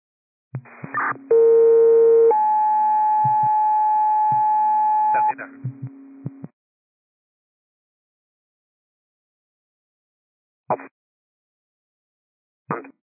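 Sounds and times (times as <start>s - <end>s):
radio dispatch alert tones: 0.8s - 5.4s.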